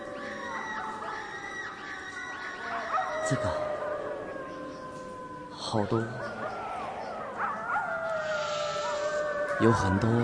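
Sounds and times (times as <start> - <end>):
wolves howling: 0.0 - 10.2
speech: 3.3 - 3.7, 5.7 - 6.3, 9.6 - 10.2
constant hiss of noise: 7.7 - 10.2.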